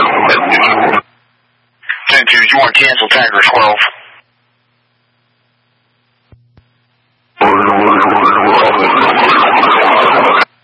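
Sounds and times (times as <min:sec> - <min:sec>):
broadband noise: 0:00.0 - 0:10.6
speech: 0:02.6 - 0:04.0
emergency siren wailing: 0:07.4 - 0:10.5.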